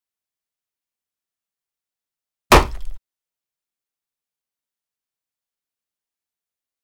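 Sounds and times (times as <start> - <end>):
bullet impact in dirt: 2.5 - 3.0.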